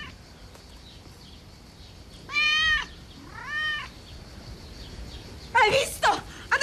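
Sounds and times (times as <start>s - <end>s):
cat meowing: 2.3s - 3.9s.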